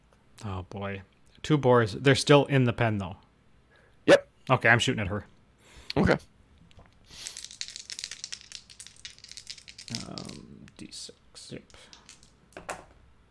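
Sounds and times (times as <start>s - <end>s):
speech: 0.4s - 3.2s, 4.0s - 5.3s, 6.0s - 6.3s, 10.9s - 11.9s
dice clattering and rolling across a tabletop: 6.8s - 10.9s, 11.6s - 13.0s.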